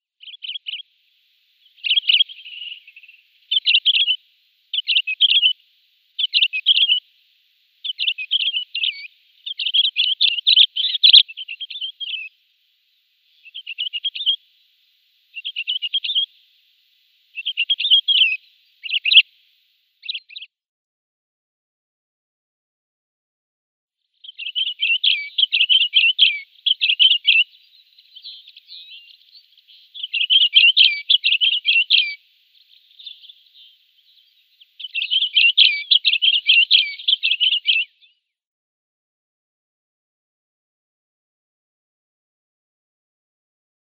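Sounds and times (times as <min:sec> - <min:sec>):
Crimson-winged Finch song: 0:00.1 - 0:20.6, 0:24.0 - 0:38.4.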